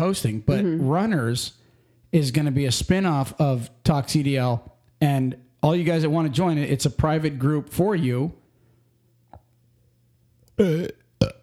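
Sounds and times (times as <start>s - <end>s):
speech: 0.0s - 8.4s, 10.6s - 11.4s
faint steady hum: 0.0s - 11.4s
burp: 10.6s - 11.4s.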